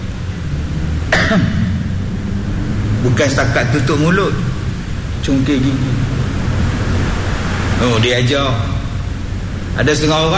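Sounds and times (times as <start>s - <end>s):
low hum: 0.0s - 10.3s
person coughing: 1.1s - 1.7s
speech: 1.3s - 1.6s, 3.0s - 4.5s, 5.2s - 6.1s, 7.8s - 8.7s, 9.8s - 10.3s.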